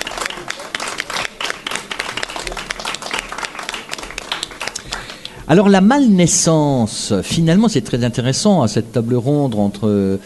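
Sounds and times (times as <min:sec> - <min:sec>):
small audience applauding at a book round table: 0:00.0 - 0:05.8
speech: 0:05.5 - 0:10.2.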